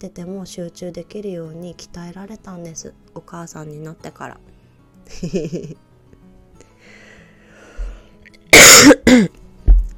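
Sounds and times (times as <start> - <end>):
speech: 0.0 - 5.9
laughter: 5.1 - 5.8
person coughing harshly: 8.5 - 9.4
faint low thump: 9.6 - 9.9.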